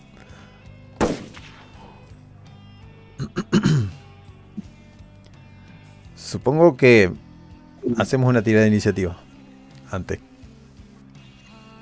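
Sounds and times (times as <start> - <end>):
single gunshot fired point-blank into someone's chest in a Western setting: 1.0 - 1.8
speech: 6.3 - 7.2, 7.9 - 9.2, 9.9 - 10.3.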